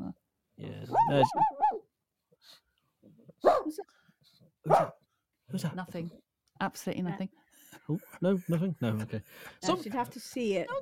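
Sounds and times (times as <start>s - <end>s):
person imitating yappy dog barks: 0.9s - 1.8s
speech: 1.1s - 1.6s, 4.7s - 10.8s.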